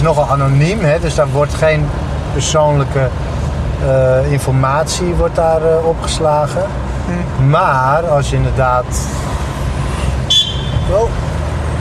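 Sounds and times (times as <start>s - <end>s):
speech: 0.0s - 9.3s, 10.9s - 11.3s
steady low rumble of road or engine noise: 0.0s - 11.7s
short high-pitched car horn tone heard from inside a moving car: 10.2s - 11.1s.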